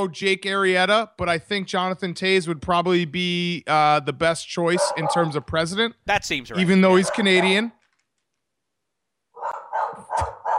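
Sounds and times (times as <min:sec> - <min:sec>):
speech: 0:00.0 - 0:07.8
dog barking: 0:04.7 - 0:05.4, 0:06.9 - 0:07.6, 0:09.4 - 0:10.5.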